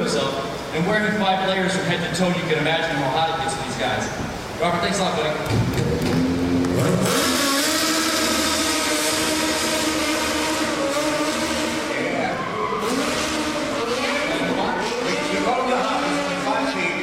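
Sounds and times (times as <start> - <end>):
crowd or voice noise: 0.0 - 17.0
speech: 0.1 - 6.2, 6.8 - 7.3
stunt car engines revving and roaring: 5.4 - 17.0
stunt vehicle tire screech: 5.9 - 17.0.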